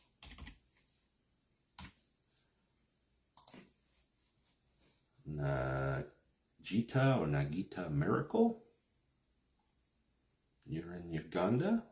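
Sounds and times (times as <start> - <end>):
typing on a computer keyboard: 0.1 - 0.6, 3.4 - 3.6
speech: 5.3 - 8.6, 10.7 - 11.9.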